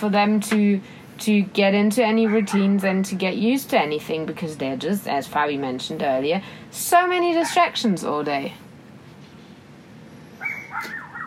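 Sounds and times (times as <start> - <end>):
speech: 0.0 - 8.6
low steady noise: 0.0 - 11.2
street dog barking: 2.2 - 2.7, 7.4 - 7.8, 10.4 - 11.2.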